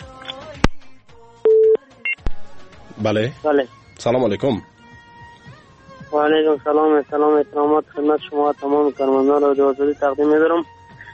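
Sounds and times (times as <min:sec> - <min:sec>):
telephone line beep while a radio phone-in line connects: 0:01.5 - 0:02.2
speech: 0:03.0 - 0:04.7, 0:06.1 - 0:10.7.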